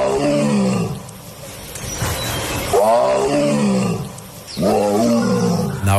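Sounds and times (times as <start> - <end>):
tiger roaring: 0.0 - 1.2, 2.6 - 5.9.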